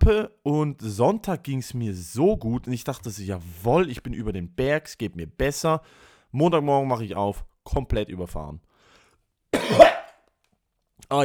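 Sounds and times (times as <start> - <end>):
speech: 0.0 - 8.7, 9.6 - 10.0, 11.0 - 11.2
harsh raspy cough with throat clearing: 9.6 - 10.1.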